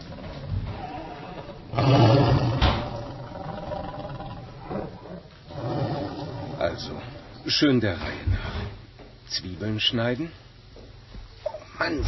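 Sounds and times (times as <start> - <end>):
hungry person's stomach growling in a kitchen: 0.0 - 7.3
speech: 6.8 - 8.3, 9.3 - 10.4, 11.8 - 12.0.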